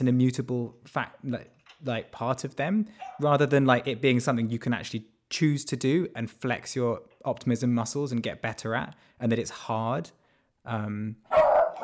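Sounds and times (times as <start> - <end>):
speech: 0.0 - 11.4
dog barking: 3.0 - 3.3, 11.3 - 11.8.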